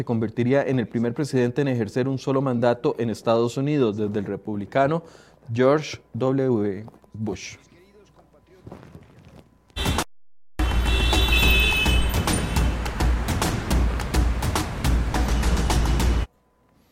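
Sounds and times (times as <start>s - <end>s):
speech: 0.0s - 7.7s
dense road traffic roaring on a ring road: 10.6s - 16.3s.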